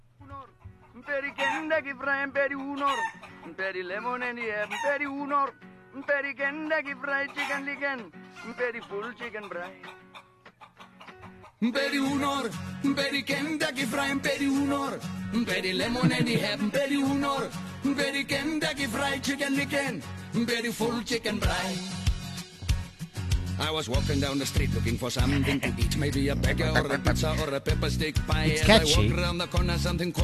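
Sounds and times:
chicken-like clucking and crowing sounds: 0.4s - 1.8s, 2.4s - 5.2s, 6.8s - 11.6s, 15.8s - 16.6s, 26.5s - 27.4s
Afrikaans novelty pop song: 1.0s - 9.9s, 11.6s - 30.2s
speech: 1.0s - 10.0s, 11.6s - 22.0s, 23.6s - 30.2s
laughter: 15.8s - 17.0s, 25.2s - 27.5s, 28.5s - 29.2s.

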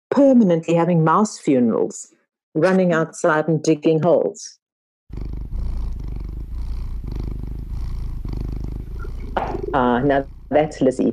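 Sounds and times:
speech: 0.2s - 5.4s, 9.7s - 11.1s
domestic cat purring: 5.1s - 11.1s.

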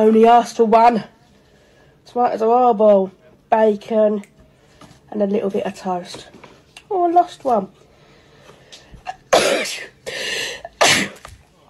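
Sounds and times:
speech: 0.0s - 1.2s, 2.1s - 4.3s, 5.1s - 7.8s, 9.6s - 10.5s
person sneezing: 9.0s - 11.3s.

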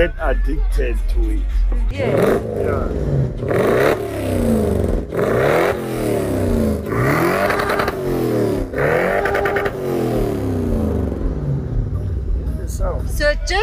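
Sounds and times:
speech: 0.0s - 4.6s
car engine revving during burnouts: 0.0s - 13.6s
car tires spinning: 2.0s - 12.0s.

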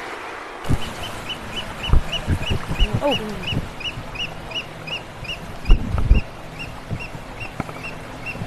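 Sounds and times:
oystercatcher piping calls: 0.7s - 8.4s
person exclaiming: 2.8s - 3.5s
speech: 3.0s - 3.6s.

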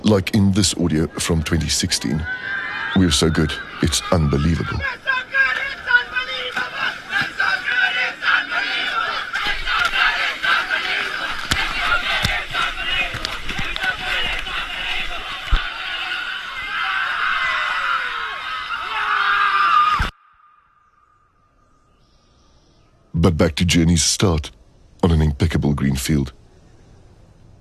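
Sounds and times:
speech: 0.1s - 5.0s, 23.4s - 26.4s
crowd shouting and cheering while running into sea: 0.9s - 20.5s
rustling movement: 4.8s - 16.6s.

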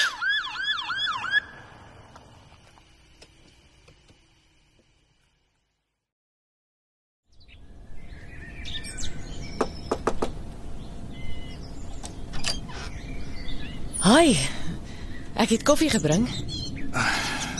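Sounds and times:
police siren wailing: 0.0s - 1.8s
outdoor ambience: 0.0s - 6.1s, 7.3s - 17.5s
birds chirping: 7.3s - 17.5s
speech: 14.1s - 14.6s, 15.4s - 16.6s.

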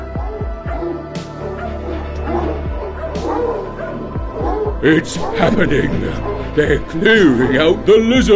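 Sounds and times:
police dogs barking loudly: 0.2s - 7.7s
speech: 4.8s - 8.3s.

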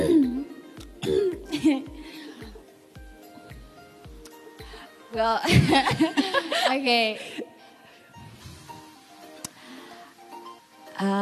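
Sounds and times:
person clearing throat before singing: 0.0s - 1.6s
speech: 5.2s - 7.3s, 11.0s - 11.1s.

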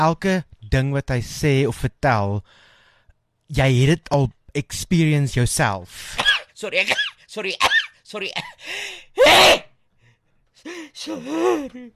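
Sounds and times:
speech: 0.0s - 2.7s, 3.5s - 9.7s, 10.6s - 11.9s
person sneezing: 6.1s - 8.0s, 9.2s - 9.7s.

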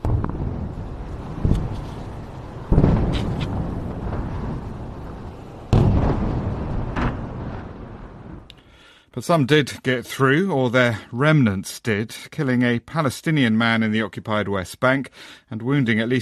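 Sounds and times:
long rolling rumble: 0.0s - 8.5s
deep explosions from missile interceptions in the sky: 0.0s - 8.8s
speech: 9.2s - 16.1s.

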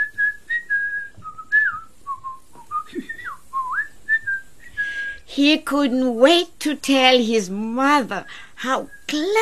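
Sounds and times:
person whistling a cheerful melody: 0.0s - 5.2s
speech: 5.4s - 9.4s.

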